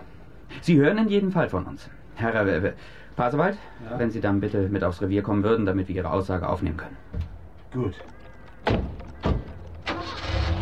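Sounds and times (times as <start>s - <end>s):
speech: 0.6s - 8.8s
car engine rumbling as the car pulls out of a yard: 8.6s - 10.5s.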